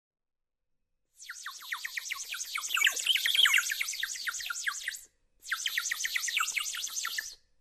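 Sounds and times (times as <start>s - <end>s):
bird twittering: 1.2s - 7.3s.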